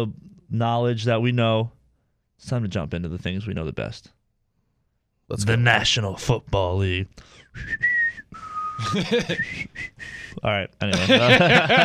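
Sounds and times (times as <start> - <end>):
speech: 0.0 - 1.8, 2.4 - 4.2, 5.3 - 11.8
person whistling a lively bumper-music tune: 7.5 - 10.4
laughter: 8.8 - 9.6, 10.9 - 11.8.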